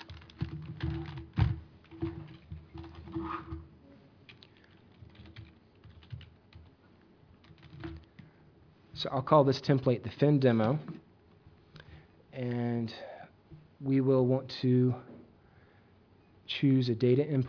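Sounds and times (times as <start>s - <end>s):
computer keyboard typing: 0.0s - 1.5s, 4.3s - 6.7s, 7.4s - 8.2s
speech: 9.0s - 11.0s, 13.9s - 15.1s, 16.6s - 17.4s.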